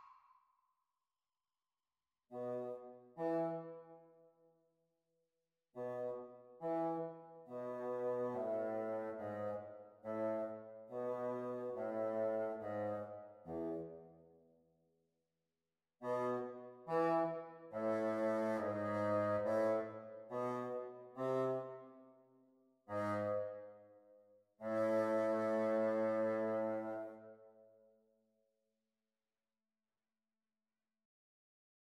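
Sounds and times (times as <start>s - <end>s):
bassoon duet practice: 2.3s - 3.9s, 5.8s - 14.0s, 16.0s - 21.9s, 22.9s - 23.8s, 24.6s - 27.3s.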